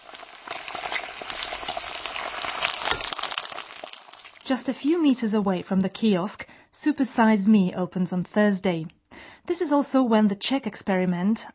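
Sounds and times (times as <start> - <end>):
fat from sausages sizzling on a hot grill: 0.0 - 4.6
speech: 4.5 - 11.5.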